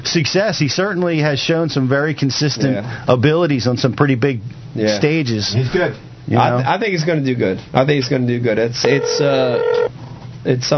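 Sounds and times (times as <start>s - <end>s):
speech: 0.1s - 10.7s
telephone ringing with electronic chime: 8.9s - 9.9s.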